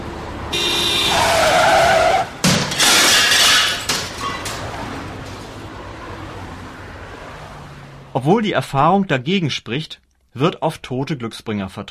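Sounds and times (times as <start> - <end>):
tire screech from a skidding car: 0.0 - 8.0
old car crashing into a new sports car: 1.1 - 5.5
rattling and scraping after a car crash: 2.4 - 5.6
speech: 8.2 - 11.8.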